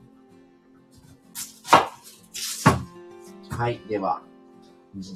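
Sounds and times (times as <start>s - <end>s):
knife chopping a peeled onion: 1.4s - 2.9s
speech: 3.6s - 4.3s, 5.0s - 5.1s.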